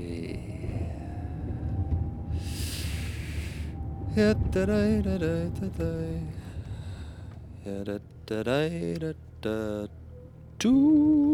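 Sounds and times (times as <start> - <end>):
car brake squeal: 0.0 - 7.9
vehicle engine rumble while slowing: 0.0 - 11.3
loud hiss of air or friction: 2.4 - 3.7
speech: 4.2 - 6.4, 7.6 - 10.0, 10.6 - 11.3.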